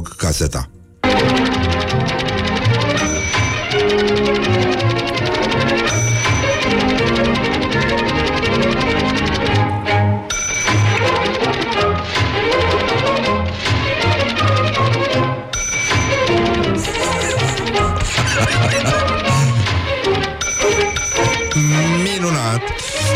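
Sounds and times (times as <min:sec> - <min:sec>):
speech: 0:00.3 - 0:02.3, 0:03.7 - 0:05.3
lively orchestral music: 0:01.0 - 0:23.1
typewriter carriage bell ding: 0:02.6 - 0:04.6, 0:05.5 - 0:06.8, 0:10.3 - 0:11.2, 0:15.5 - 0:17.7, 0:20.4 - 0:22.2
laughter: 0:16.8 - 0:19.9.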